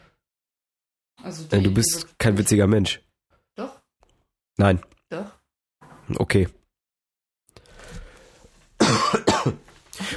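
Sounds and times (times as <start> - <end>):
speech: 1.3 - 3.7, 4.6 - 5.4, 6.1 - 6.6
person coughing: 8.8 - 10.1.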